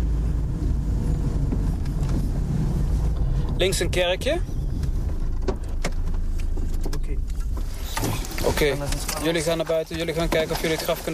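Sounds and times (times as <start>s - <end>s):
wind buffeting: 0.0s - 8.8s
car driving along a small street: 0.0s - 11.1s
speech: 3.6s - 4.6s, 8.6s - 11.1s.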